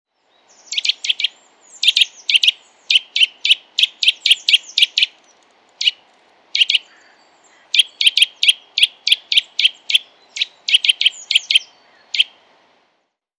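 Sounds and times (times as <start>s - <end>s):
Eurasian nuthatch Sitta europaea calling: 0.3s - 12.4s.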